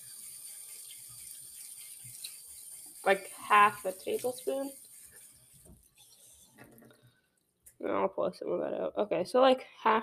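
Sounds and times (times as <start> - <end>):
hot water pouring into thick batter: 0.0 - 6.6
speech: 3.0 - 4.8, 7.8 - 10.0.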